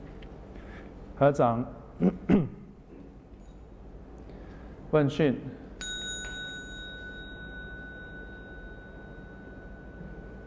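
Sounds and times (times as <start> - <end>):
soft hum: 0.0 - 10.4
speech: 1.2 - 2.6, 4.9 - 5.6
meditation bell struck as a signal for a group: 5.7 - 10.4.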